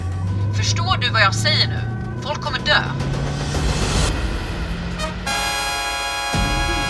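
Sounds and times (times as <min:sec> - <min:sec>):
heavy vehicle engines roaring during a car chase: 0:00.0 - 0:06.8
loud road noise on the E14 outside central Östersund: 0:00.0 - 0:06.8
rushing traffic: 0:00.0 - 0:06.8
speech: 0:00.6 - 0:03.5
sustained blaring truck horn: 0:04.6 - 0:06.8.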